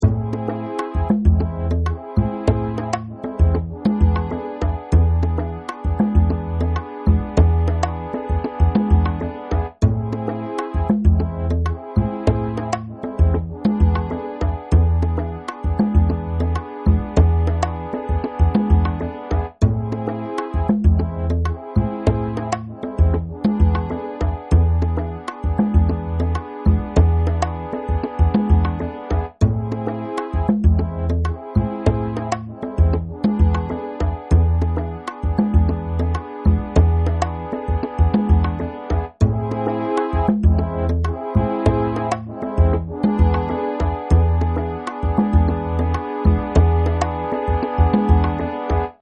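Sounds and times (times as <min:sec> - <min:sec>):
A minor classical backing track: 0:00.0 - 0:49.0.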